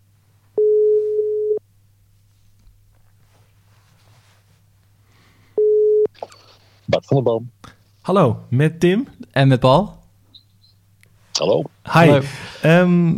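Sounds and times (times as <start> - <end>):
ringback tone on a telephone line: 0.6 - 1.6, 5.6 - 6.1
speech: 6.9 - 10.0, 11.4 - 13.1.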